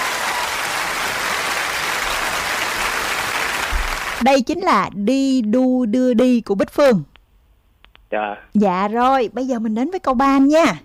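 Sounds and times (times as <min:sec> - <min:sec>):
group applauding: 0:00.0 - 0:04.2
speech: 0:04.2 - 0:07.1, 0:08.1 - 0:10.8.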